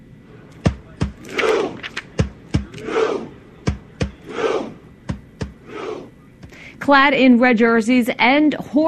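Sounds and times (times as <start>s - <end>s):
soccer fans shouting in unison in a Viking rowing chant: 0.9s - 6.2s
speech: 6.9s - 8.8s.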